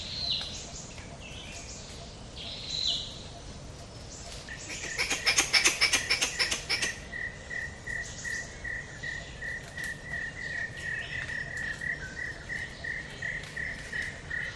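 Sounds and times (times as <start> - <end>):
insects in a morning forest: 0.0 - 14.5
squirrel chattering in a morning forest in Cat Tien National Park, Vietnam: 4.6 - 7.0.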